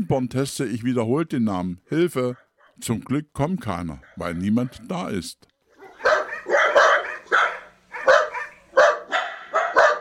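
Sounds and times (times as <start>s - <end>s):
speech: 0.0s - 5.5s
dachshund barking: 5.8s - 9.9s.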